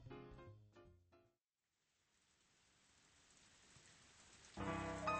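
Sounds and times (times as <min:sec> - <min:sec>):
light rain falling: 0:01.7 - 0:05.1.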